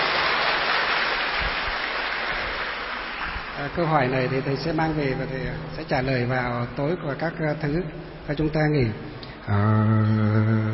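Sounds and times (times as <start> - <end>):
crowd applauding: 0.0 - 5.0
speech: 3.6 - 10.7.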